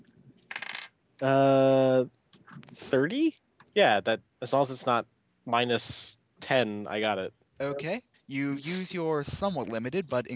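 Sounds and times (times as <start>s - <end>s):
dice clattering across a table: 0.4s - 0.9s
speech: 1.2s - 2.2s, 2.8s - 10.3s.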